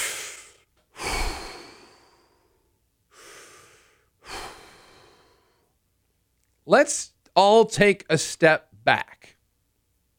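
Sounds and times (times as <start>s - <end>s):
deep breaths: 0.0s - 5.8s
speech: 6.7s - 9.4s.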